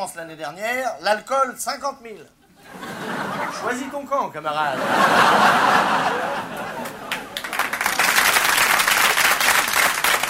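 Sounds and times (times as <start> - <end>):
speech: 0.0 - 2.9, 3.5 - 6.6
laughter: 2.5 - 4.0, 4.6 - 7.9
live audience applause: 5.3 - 10.2.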